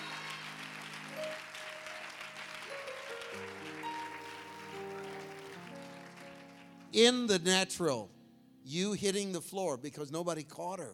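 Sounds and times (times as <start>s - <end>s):
large audience clapping: 0.0s - 7.2s
speech: 7.0s - 10.9s.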